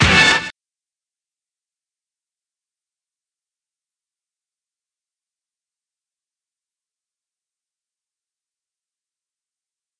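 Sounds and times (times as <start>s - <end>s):
hip hop drum hit: 0.0s - 0.5s.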